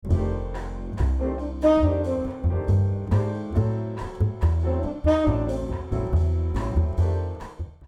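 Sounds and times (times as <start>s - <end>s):
bass guitar mixed from microphone and DI with dynamics and EQ: 0.0s - 7.8s.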